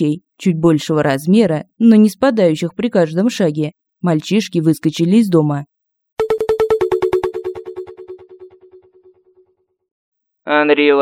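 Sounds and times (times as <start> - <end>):
speech: 0.0 - 5.7, 10.4 - 11.0
telephone ringing with electronic pulses: 6.2 - 8.9.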